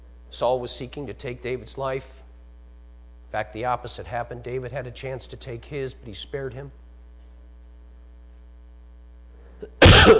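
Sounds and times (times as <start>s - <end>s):
speech: 0.3s - 2.2s, 3.3s - 6.8s
single loud harsh cough: 9.6s - 10.1s.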